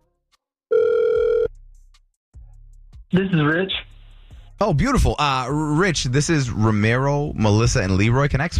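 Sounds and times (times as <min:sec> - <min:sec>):
electronic ringback tone on an outgoing phone call: 0:00.7 - 0:01.5
speech: 0:03.1 - 0:03.9, 0:04.6 - 0:08.5.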